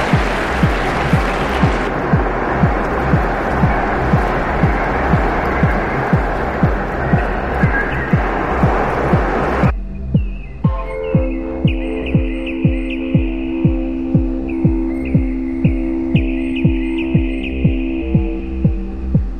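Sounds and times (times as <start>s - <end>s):
large crowd cheering at an awards announcement: 0.0s - 9.7s
steady rhythmic thumping of unison clapping or stomping: 0.0s - 19.3s.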